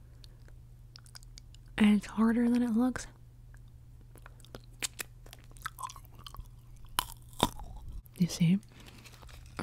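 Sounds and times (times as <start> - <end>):
faint low hum: 0.0 - 9.6
biting and chewing hard coconut candy: 0.2 - 1.7, 3.5 - 8.1, 8.7 - 9.6
speech: 1.8 - 3.2, 8.2 - 8.8.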